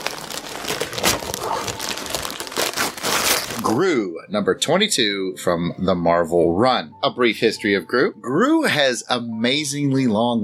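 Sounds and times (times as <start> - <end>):
plastic wrapper of a collectible figure crinkling as it is unwrapped: 0.0 - 3.8
speech: 3.7 - 10.4.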